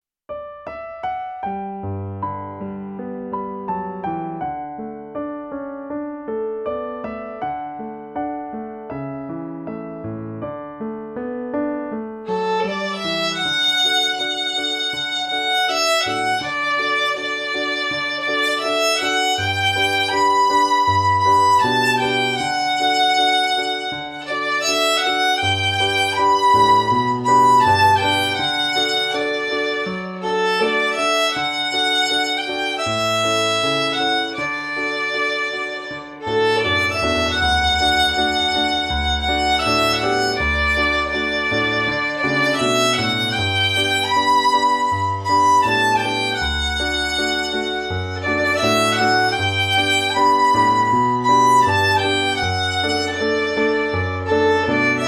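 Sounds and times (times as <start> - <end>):
piano playing: 0.3 - 55.0
beginner violin playing: 12.2 - 55.0.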